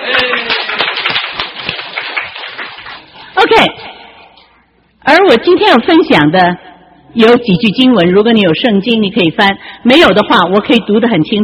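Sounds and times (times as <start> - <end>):
audience clapping for the choir: 0.0 - 3.6
speech: 5.3 - 11.4.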